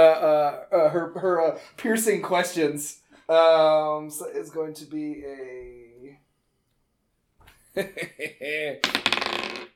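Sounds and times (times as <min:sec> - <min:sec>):
speech: 0:00.2 - 0:06.2, 0:07.8 - 0:09.7
dice clattering across a tabletop: 0:08.8 - 0:09.7.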